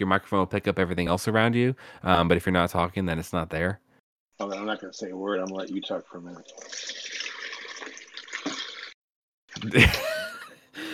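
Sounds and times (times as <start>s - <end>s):
speech: 0.0s - 3.8s, 4.4s - 8.6s, 9.6s - 10.2s
running water hissing from a tap: 6.3s - 9.0s.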